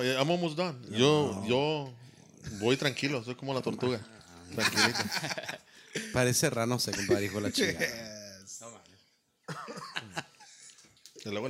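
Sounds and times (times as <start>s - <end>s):
speech: 0.0s - 8.2s, 11.2s - 11.4s
laughter: 4.5s - 6.2s, 6.9s - 8.1s, 9.5s - 10.6s
person coughing: 9.5s - 10.1s.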